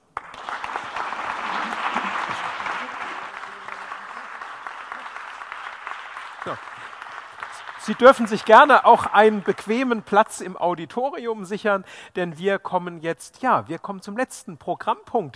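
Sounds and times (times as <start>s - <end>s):
audience applause: 0.0s - 10.2s
speech: 6.4s - 6.7s, 7.8s - 15.3s.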